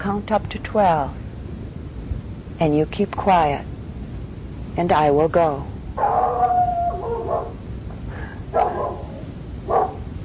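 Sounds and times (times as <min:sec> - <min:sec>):
speech: 0:00.0 - 0:01.2, 0:02.6 - 0:03.7, 0:04.8 - 0:06.1
steady low noise: 0:00.0 - 0:10.2
dog howling: 0:06.0 - 0:07.6, 0:08.6 - 0:10.1.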